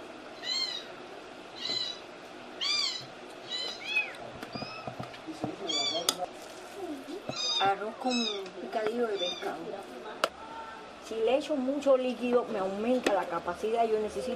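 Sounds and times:
several domestic cats meowing in a home: 0:00.4 - 0:00.9, 0:02.6 - 0:06.3, 0:06.9 - 0:09.7
low murmur: 0:03.5 - 0:14.3
speech: 0:07.7 - 0:10.0, 0:11.1 - 0:14.3.

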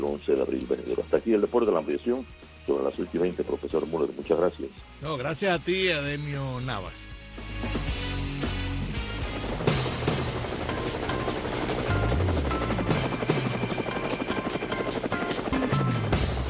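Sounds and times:
speech: 0:00.0 - 0:07.6
helicopter engine roar: 0:07.4 - 0:16.4
helicopter rotor blades chopping: 0:08.9 - 0:16.4.

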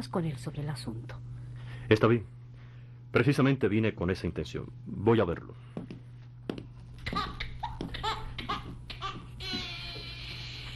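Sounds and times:
speech: 0:00.0 - 0:01.3, 0:01.9 - 0:02.4, 0:03.1 - 0:05.9
steady low hum: 0:00.0 - 0:10.7
baby crying: 0:07.1 - 0:10.7.

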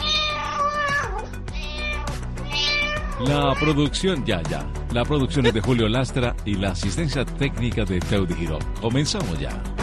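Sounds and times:
cat meowing: 0:00.0 - 0:03.9
speech: 0:03.2 - 0:09.7.

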